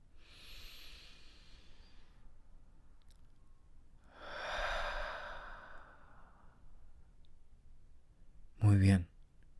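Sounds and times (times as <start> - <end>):
long full exhale through the mouth: 0.2 - 2.2, 4.1 - 6.5
slow deep inhale: 0.2 - 2.3, 4.1 - 6.7.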